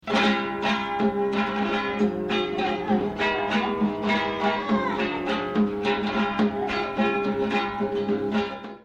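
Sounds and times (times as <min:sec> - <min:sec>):
guitar: 0:00.0 - 0:08.8.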